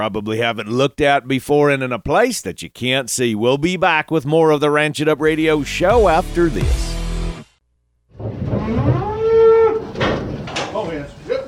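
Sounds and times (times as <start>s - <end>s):
speech: 0.0s - 6.9s
single drawn-out cow moo: 8.6s - 10.0s.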